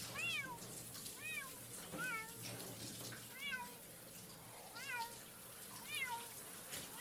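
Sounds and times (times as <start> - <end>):
running shower water: 0.0 - 6.9
cat meowing in distress while being showered: 0.1 - 2.4, 3.3 - 3.8, 4.7 - 5.2, 5.8 - 6.9.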